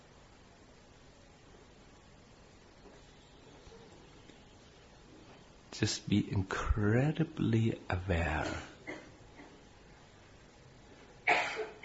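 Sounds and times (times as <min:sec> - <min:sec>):
speech: 0:05.8 - 0:08.7
person coughing sharply: 0:08.4 - 0:09.6, 0:11.3 - 0:11.8.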